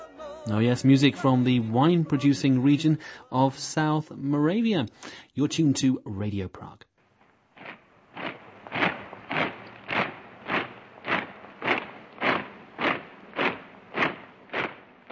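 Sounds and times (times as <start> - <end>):
speech: 0.4 - 6.9
German troops marching in boots across a city square: 7.6 - 15.0.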